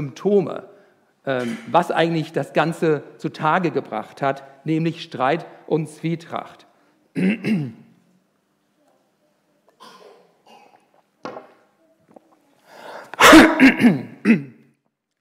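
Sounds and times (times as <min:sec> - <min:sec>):
speech: 0:00.0 - 0:07.8, 0:13.3 - 0:14.5
person clearing throat into a headset microphone: 0:01.4 - 0:01.7, 0:07.2 - 0:07.8, 0:09.8 - 0:11.0, 0:13.2 - 0:14.6
person coughing into a headset microphone: 0:01.4 - 0:01.8, 0:07.2 - 0:07.8, 0:09.8 - 0:10.9, 0:13.2 - 0:14.6.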